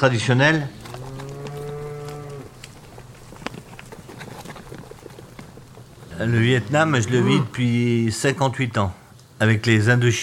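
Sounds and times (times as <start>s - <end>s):
speech: 0.0s - 0.8s, 6.2s - 10.2s
cow mooing in a pasture: 0.8s - 2.5s, 6.7s - 7.6s
small clicks and rustles outdoors: 0.8s - 6.1s.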